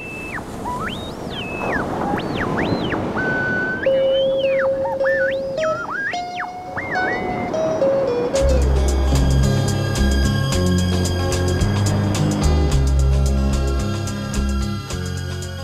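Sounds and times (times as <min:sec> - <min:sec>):
high whistling bird calls: 0:00.0 - 0:07.6
ocean surf at a beach: 0:00.0 - 0:15.6.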